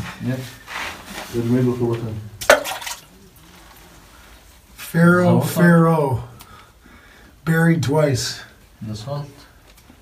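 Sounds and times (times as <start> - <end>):
speech: 0.2 - 0.6, 1.3 - 2.4, 4.9 - 6.3, 7.4 - 9.4
thrown rock splashing into water: 2.4 - 3.1.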